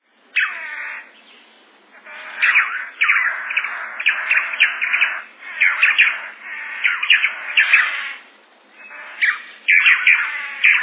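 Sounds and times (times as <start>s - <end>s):
Tangara tanager: 0.3s - 10.8s.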